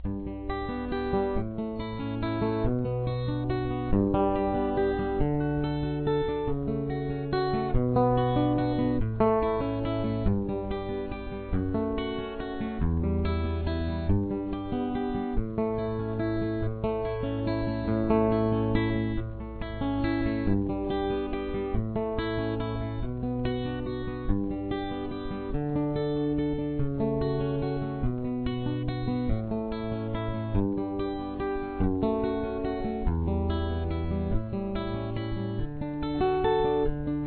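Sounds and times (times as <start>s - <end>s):
guitar playing a verse: 0.0s - 37.2s.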